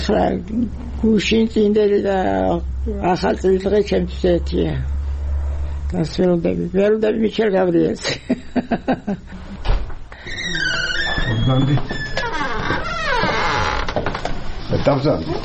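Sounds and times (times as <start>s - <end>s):
speech: 0.0s - 5.0s, 5.9s - 9.5s, 11.4s - 12.1s, 14.8s - 15.4s
laughter: 8.0s - 9.6s
room door creaking in a care home for the elderly: 9.4s - 15.4s.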